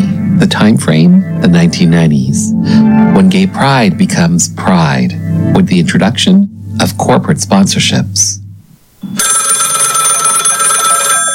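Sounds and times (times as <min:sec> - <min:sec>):
speech: 0:00.4 - 0:08.4
telephone bell ringing: 0:09.0 - 0:11.3.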